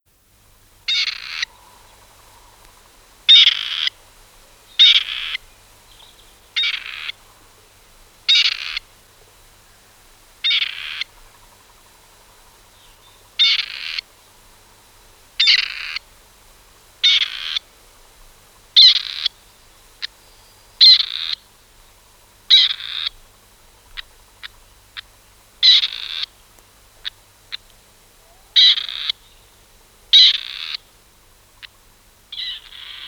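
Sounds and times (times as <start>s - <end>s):
Grey Partridge calling: 0.9s - 2.6s, 3.3s - 4.0s, 4.7s - 7.2s, 8.3s - 8.8s, 10.4s - 11.5s, 12.8s - 14.1s, 15.4s - 16.0s, 17.0s - 17.6s, 18.8s - 19.4s, 20.8s - 21.4s, 22.5s - 23.2s, 23.9s - 26.4s, 27.0s - 29.5s, 30.1s - 30.9s, 31.6s - 33.0s.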